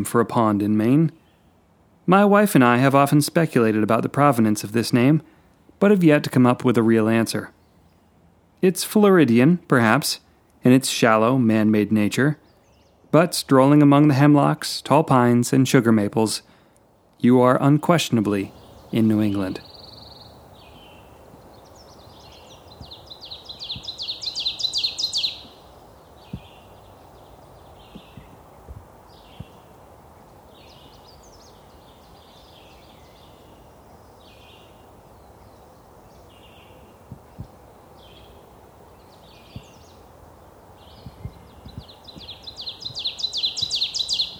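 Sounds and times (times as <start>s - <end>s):
speech: 0.0s - 1.2s, 2.1s - 7.6s, 8.6s - 12.4s, 13.1s - 16.5s, 17.2s - 19.7s
ovenbird singing teacher-teacher song in eastern North American woods: 0.4s - 1.6s, 6.8s - 8.2s, 11.0s - 15.3s, 17.5s - 44.3s
faint bird chirps: 18.4s - 44.3s.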